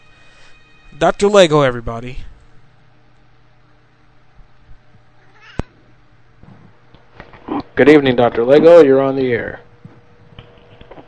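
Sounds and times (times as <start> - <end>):
speech: 0.9 - 2.3, 7.8 - 9.6
cat meowing on a call-in phone line: 5.2 - 5.7.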